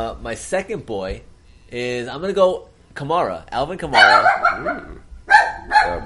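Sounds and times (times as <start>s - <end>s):
speech: 0.0s - 5.0s, 5.8s - 6.0s
female dog barking: 3.9s - 6.0s.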